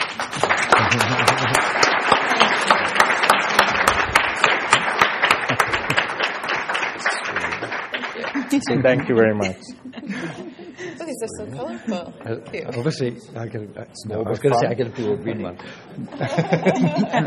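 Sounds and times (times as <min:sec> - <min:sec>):
faint voices murmuring: 0:00.0 - 0:04.8, 0:07.0 - 0:17.2
audience applause: 0:00.0 - 0:09.4
speech: 0:00.2 - 0:02.8, 0:08.5 - 0:09.9, 0:11.2 - 0:17.2
laughter: 0:00.3 - 0:12.3, 0:14.4 - 0:17.2.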